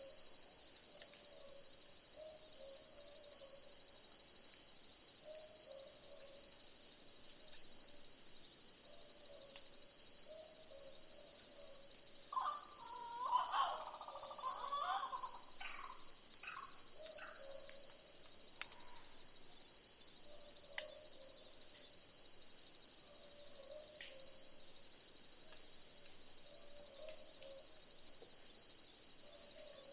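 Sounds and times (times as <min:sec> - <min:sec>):
shrill insect chorus: 0:00.0 - 0:29.9
several boobook owls hooting in soft paired notes: 0:12.3 - 0:17.4
busy calls from another bird: 0:12.3 - 0:17.8.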